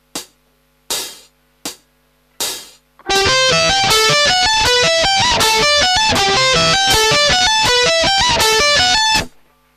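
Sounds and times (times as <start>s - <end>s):
advanced arpeggio: 3.1s - 9.3s.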